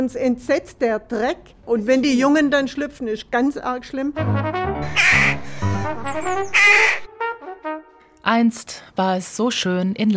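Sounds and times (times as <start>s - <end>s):
speech: 0.0s - 7.1s, 8.3s - 10.1s
rook colony cawing in Laubheim: 4.8s - 7.1s.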